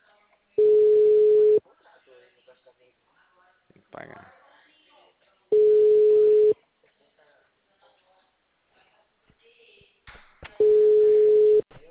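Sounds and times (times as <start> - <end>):
telephone tone as a call is placed: 0.6 - 1.6, 5.5 - 6.5, 10.6 - 11.6
speech: 4.0 - 4.4.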